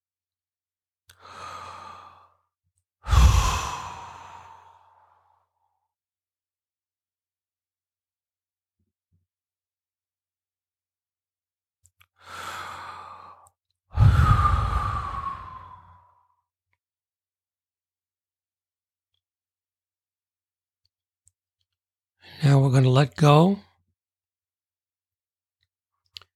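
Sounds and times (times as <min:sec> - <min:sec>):
slow deep breathing as a meditation breathing exercise: 0:01.2 - 0:02.4, 0:03.0 - 0:05.7, 0:12.2 - 0:16.4
speech: 0:22.4 - 0:23.7.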